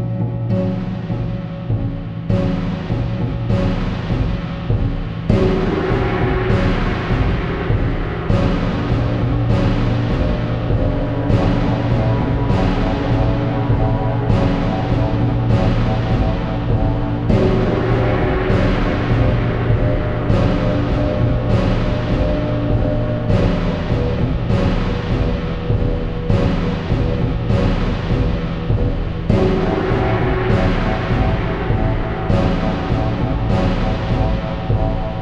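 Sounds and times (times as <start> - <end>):
tense Mongolian drums: 0.2 - 35.2.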